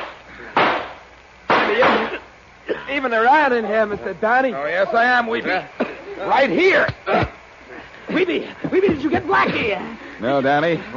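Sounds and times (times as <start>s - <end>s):
gunshots in a radio drama shootout: 0.0s - 2.1s
speech: 2.9s - 7.4s, 8.2s - 10.9s.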